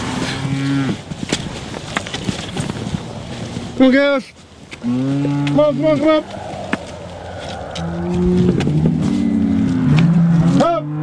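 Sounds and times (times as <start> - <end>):
shuffling: 0.0 - 10.5
pregnant cows mooing while moved through a gate: 0.2 - 1.0, 4.7 - 11.0
speech: 3.8 - 6.4, 8.1 - 8.5.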